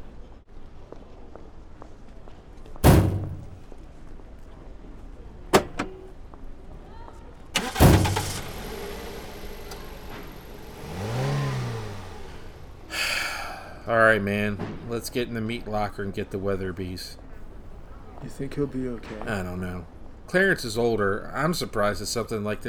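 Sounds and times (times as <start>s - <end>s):
car doors thumping shut: 2.8s - 3.6s, 5.6s - 6.1s, 7.6s - 12.8s
car engine turning over and revving as the car pulls away: 7.6s - 12.9s
speech: 13.9s - 17.2s, 18.2s - 22.6s.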